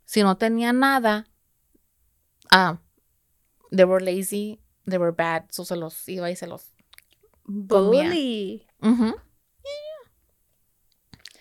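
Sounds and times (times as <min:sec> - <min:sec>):
speech: 0:00.1 - 0:01.3, 0:02.5 - 0:02.8, 0:03.7 - 0:06.8, 0:07.5 - 0:09.8
person imitating a cat meow: 0:07.7 - 0:08.6, 0:09.7 - 0:10.1.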